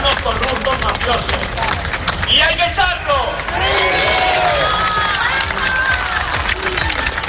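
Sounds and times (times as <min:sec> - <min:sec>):
people clapping: 0:00.0 - 0:07.2
street protest crowd roar: 0:03.2 - 0:07.2
people shouting: 0:03.4 - 0:07.0.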